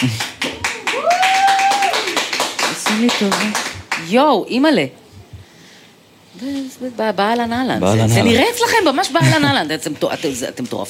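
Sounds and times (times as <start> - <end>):
speech: 0.0 - 0.3, 3.0 - 5.0, 6.4 - 10.8
audience clapping in quick rhythmic bursts: 0.0 - 4.2.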